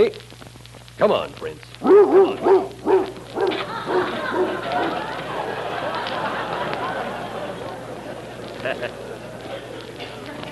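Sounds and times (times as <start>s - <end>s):
speech: 0.0s - 0.3s, 1.0s - 2.7s, 8.6s - 9.1s
dog barking: 1.8s - 4.9s
laughter: 3.4s - 10.4s.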